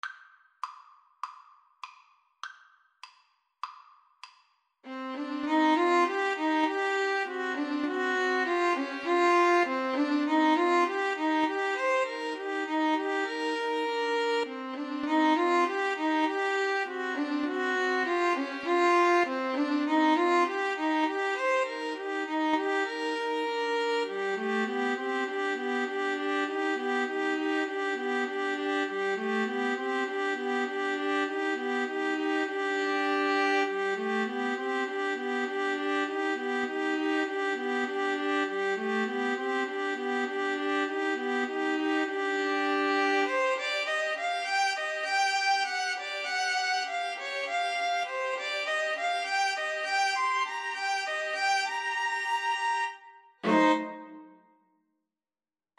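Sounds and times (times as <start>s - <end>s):
string trio playing: 4.9s - 54.3s.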